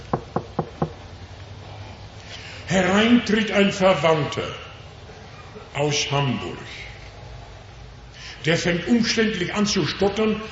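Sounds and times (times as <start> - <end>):
knocking on a door: 0.1 - 1.0
speech: 2.7 - 4.6, 5.8 - 6.9, 8.4 - 10.4.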